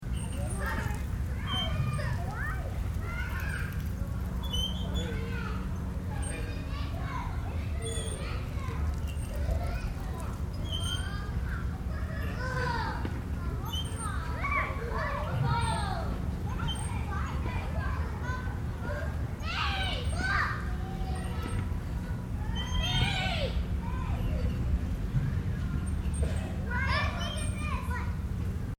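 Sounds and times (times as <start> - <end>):
children playing with swings in a playground: 0.0 - 28.7
distant city noise: 0.0 - 28.7.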